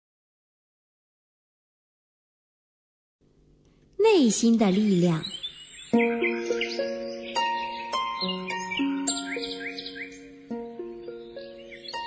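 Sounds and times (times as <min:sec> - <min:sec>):
speech: 0:04.0 - 0:05.4, 0:06.0 - 0:07.0
small birds chirping in trees: 0:04.0 - 0:12.0
soft sustained piano-like music notes: 0:05.6 - 0:12.0.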